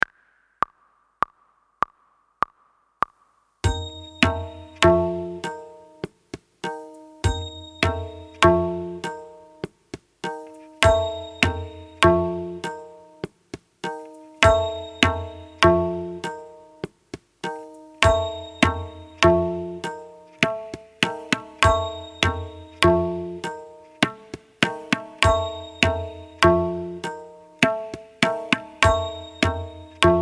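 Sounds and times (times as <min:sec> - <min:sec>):
tabla strokes practising ta and na: 0:00.0 - 0:30.2.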